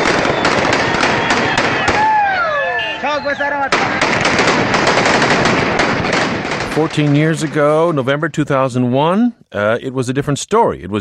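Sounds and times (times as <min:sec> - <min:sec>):
loud rapid bursts of gunfire from fighters in city streets: 0:00.0 - 0:02.1, 0:03.6 - 0:08.2
men yelling in city streets: 0:01.1 - 0:04.0
speech: 0:03.2 - 0:04.8, 0:06.8 - 0:10.9.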